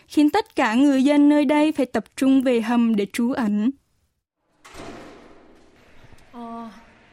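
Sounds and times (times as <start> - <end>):
speech: 0.1 - 3.8
heavy iron door of a village bomb shelter clanking open: 4.6 - 5.8.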